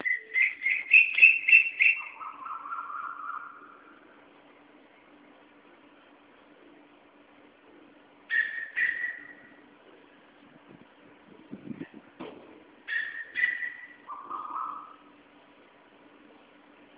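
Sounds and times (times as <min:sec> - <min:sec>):
koel calls with loud piercing notes and drawn-out rising note: 0:00.0 - 0:04.0, 0:08.3 - 0:09.6, 0:12.9 - 0:15.1.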